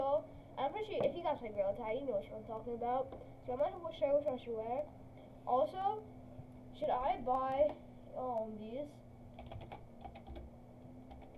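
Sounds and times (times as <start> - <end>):
steady low electrical hum: 0.0 - 11.3
speech: 0.7 - 6.2, 6.8 - 9.0
typing on a computer keyboard: 9.4 - 10.5, 11.1 - 11.3.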